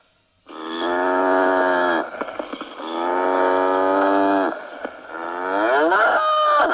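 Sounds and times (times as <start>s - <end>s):
cow mooing: 0.5s - 2.1s, 2.8s - 6.2s.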